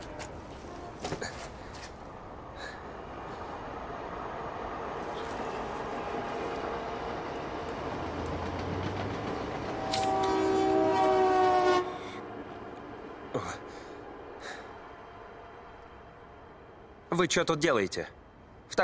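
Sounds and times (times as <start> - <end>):
rumble of rolling rail cars at a railway station: 0.0 - 18.8
train horn blast at a railway station: 9.6 - 12.3
speech: 17.2 - 18.2.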